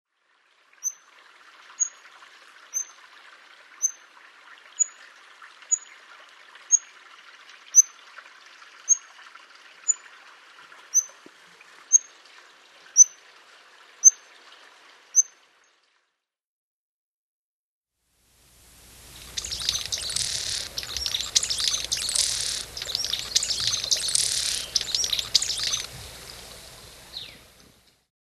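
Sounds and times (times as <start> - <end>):
Blue throated Hummingbird: 18.8 - 27.8.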